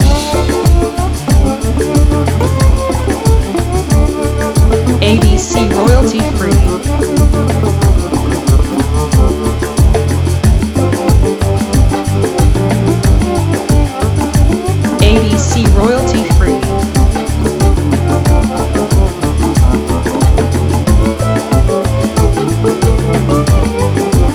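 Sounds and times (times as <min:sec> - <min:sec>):
distorted slide groove loop: 0:00.0 - 0:24.3.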